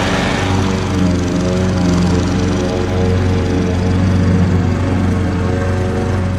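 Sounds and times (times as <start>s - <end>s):
lawn mower cutting grass: 0.0s - 6.3s.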